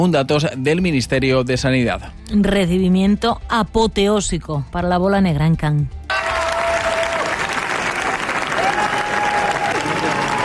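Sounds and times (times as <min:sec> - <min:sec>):
speech: 0:00.0 - 0:06.0
prolonged applause from a large audience at a film premiere: 0:06.1 - 0:10.4.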